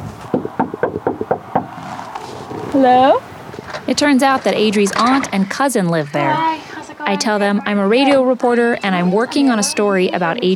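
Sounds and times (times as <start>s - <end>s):
faint noise: 0.0s - 10.5s
knocking on the wooden door of a house: 0.3s - 1.8s
speech: 2.8s - 3.3s, 3.9s - 10.5s.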